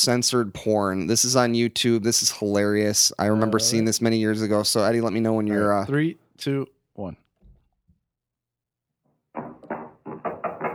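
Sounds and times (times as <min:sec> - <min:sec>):
speech: 0:00.0 - 0:07.2
knocking on a door: 0:09.3 - 0:10.7.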